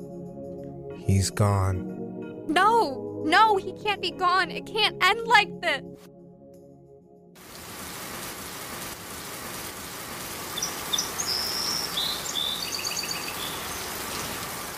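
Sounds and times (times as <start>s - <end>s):
speech: 1.1s - 6.1s
rain falling: 7.4s - 14.7s
birds chirping: 10.4s - 14.5s.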